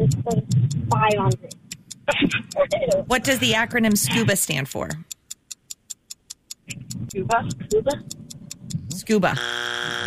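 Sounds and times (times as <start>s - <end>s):
countdown ticking: 0.0s - 10.0s
speech: 0.1s - 5.2s, 6.7s - 8.2s, 9.0s - 10.0s
game show time-up buzzer: 9.3s - 10.0s.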